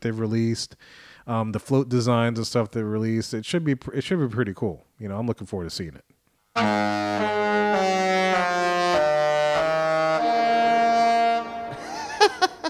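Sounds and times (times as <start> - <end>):
speech: 0.0 - 8.2
cruise ship horn playing a melody of deep sustained tones: 6.6 - 12.1.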